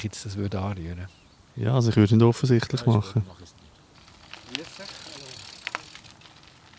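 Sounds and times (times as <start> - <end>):
speech: 0.0 - 3.6, 4.5 - 5.1
steady outdoor noise: 0.0 - 6.7
bicycle rolling past: 2.6 - 6.7
sharp rattling clicks from the bicycle: 3.9 - 6.7.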